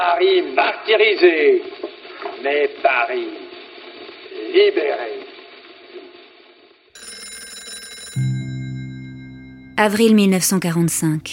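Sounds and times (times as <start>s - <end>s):
speech: 0.2s - 1.8s, 2.4s - 3.4s, 4.4s - 5.3s, 9.8s - 11.3s
old-style telephone bell ringing with metallic trill: 7.0s - 10.6s.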